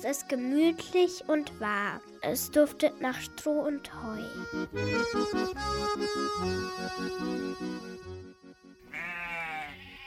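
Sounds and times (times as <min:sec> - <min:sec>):
speech: 0:00.0 - 0:08.2
sheep bleating with goat-like calls: 0:08.8 - 0:10.0.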